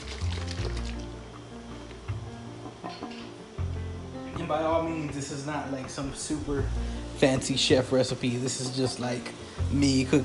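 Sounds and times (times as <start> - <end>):
water pouring into a pot of thick marinara sauce: 0.0 - 1.2
speech: 4.5 - 10.2.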